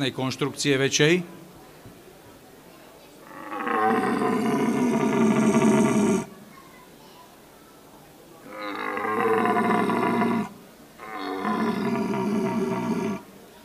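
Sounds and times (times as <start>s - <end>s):
speech: 0.0s - 1.4s
red deer stag bellowing its searching rut call: 3.3s - 6.3s, 8.4s - 13.3s.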